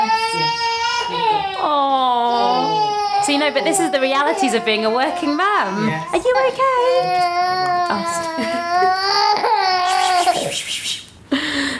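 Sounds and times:
young girl crying with wailing sobs: 0.0 - 10.5
speech: 3.3 - 10.0.

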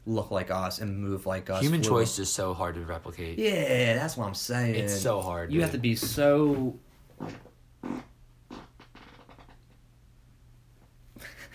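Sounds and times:
speech: 0.1 - 8.0
short low sputtering fart bursts: 7.2 - 9.9.

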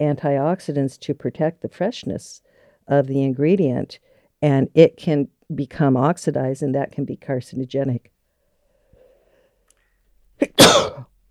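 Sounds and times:
speech: 0.0 - 8.1
person sneezing: 10.4 - 11.0.

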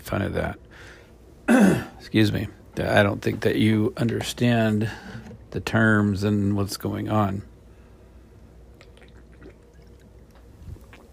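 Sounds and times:
low hum: 0.0 - 11.1
speech: 0.1 - 7.5
person drinking water: 8.7 - 11.1.

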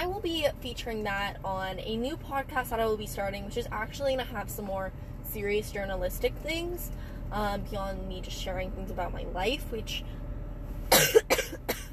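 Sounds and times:
speech: 0.2 - 10.2
person coughing roughly: 10.9 - 11.9.

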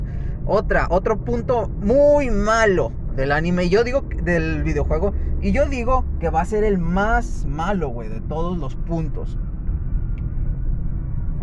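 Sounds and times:
loud car engine rumbling with road noise: 0.0 - 11.4
speech: 0.5 - 9.5.

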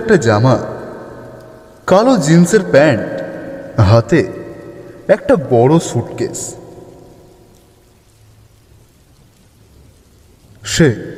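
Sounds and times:
speech: 0.0 - 0.8, 1.9 - 3.2, 3.8 - 4.4, 5.1 - 6.6, 10.6 - 11.1
heavy rain on a stormy night by a railway line: 0.0 - 11.1.

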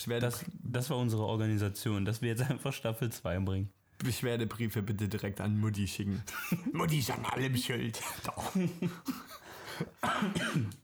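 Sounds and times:
speech: 0.0 - 10.8
laughter: 6.3 - 10.0
harsh throaty coughing: 6.3 - 10.8
throat clearing: 10.0 - 10.8.

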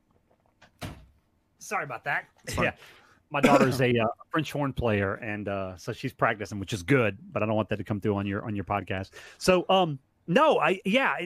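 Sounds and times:
door swinging shut with a soft brush and solid thud: 0.8 - 1.1
speech: 1.7 - 11.2.

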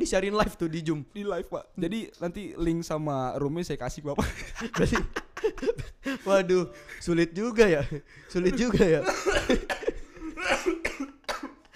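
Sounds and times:
speech: 0.0 - 9.9
laughter: 4.2 - 7.0, 7.6 - 11.7
child coughing harshly: 9.0 - 11.7.

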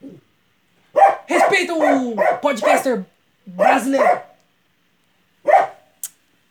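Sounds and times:
dog barking: 0.9 - 4.4, 5.4 - 6.0
speech: 1.5 - 4.3.

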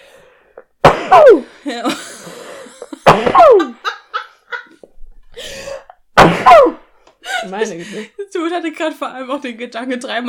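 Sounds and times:
person sneezing: 0.8 - 1.5, 6.2 - 6.8
speech: 1.1 - 2.4, 3.2 - 3.8, 7.5 - 10.2
laughter: 1.7 - 4.8.

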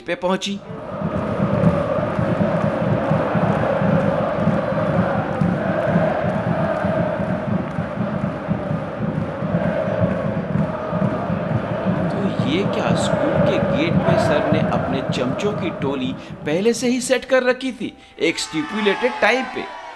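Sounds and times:
speech: 0.0 - 0.8, 15.1 - 19.8
large crowd at a school gate cheering hip hip hurray: 0.6 - 16.4, 18.3 - 19.9
sharp clapping: 1.2 - 14.7.

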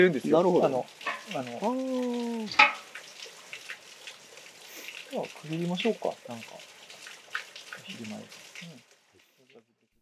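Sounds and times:
couple of people chatting casually: 0.0 - 2.6, 5.1 - 6.6, 7.8 - 8.8
speech: 0.0 - 2.8, 5.1 - 6.7, 7.9 - 8.8
water flowing and rushing outdoors: 0.0 - 9.7.

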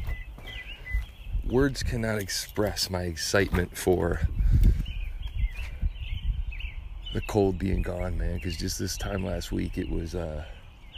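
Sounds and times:
shuffling footsteps: 0.0 - 5.8
birds singing and chirping at dawn: 0.0 - 10.9
speech: 1.5 - 4.8, 7.1 - 10.6.

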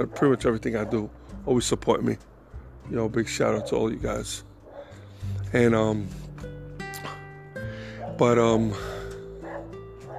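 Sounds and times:
speech: 0.0 - 4.5, 5.2 - 6.2, 8.2 - 9.0
female dog whining and yelping: 9.4 - 10.1.

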